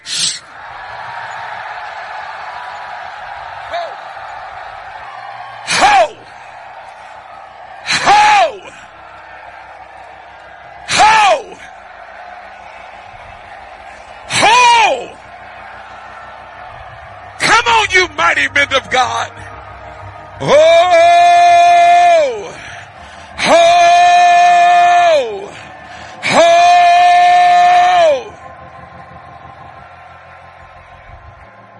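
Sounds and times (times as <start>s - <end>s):
large crowd shouting together: 0.0s - 31.7s
speech: 18.5s - 19.4s, 20.4s - 21.2s.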